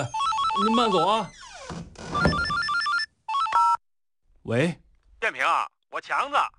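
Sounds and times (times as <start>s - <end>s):
phone ringtone playing a bright stepping electronic melody: 0.0s - 1.3s, 2.2s - 3.8s
speech: 0.0s - 2.2s, 4.5s - 6.5s.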